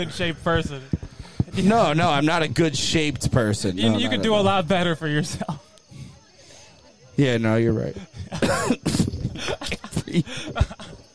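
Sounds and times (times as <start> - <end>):
speech: 0.0 - 1.0, 1.6 - 5.5, 7.2 - 10.8
voiced noises: 0.0 - 11.1
laughter: 8.0 - 11.1
throat clearing: 8.1 - 9.6
person coughing: 8.2 - 9.6.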